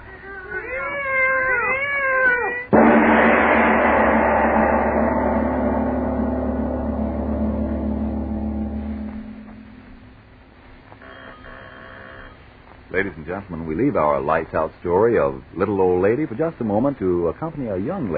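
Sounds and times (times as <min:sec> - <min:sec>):
cats yowling and meowing: 0:00.0 - 0:02.7
loud sustained droning noise: 0:02.7 - 0:10.6
speech: 0:13.0 - 0:18.1.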